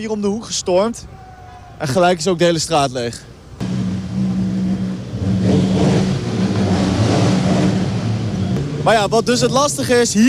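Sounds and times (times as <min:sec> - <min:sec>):
speech: 0:00.0 - 0:01.2, 0:01.8 - 0:03.7, 0:08.8 - 0:10.2
several motorcycle engines revving in a street: 0:03.5 - 0:10.2.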